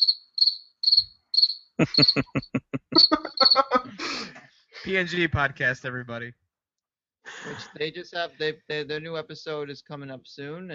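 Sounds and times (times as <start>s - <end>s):
crickets chirping: 0.0s - 3.9s
speech: 1.8s - 3.2s, 3.9s - 6.4s, 7.3s - 10.7s
laughter: 1.8s - 5.1s, 7.3s - 7.9s.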